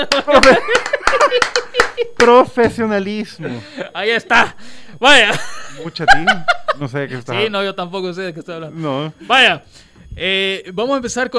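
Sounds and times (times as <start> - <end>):
speech: 0.0 - 0.9, 2.2 - 11.3
laughter: 0.0 - 2.2, 5.2 - 7.3
people clapping: 0.0 - 2.5.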